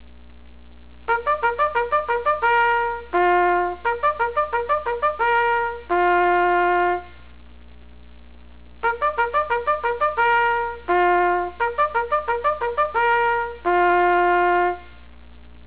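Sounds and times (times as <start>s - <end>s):
bugle call: 1.1s - 7.3s, 8.8s - 15.0s.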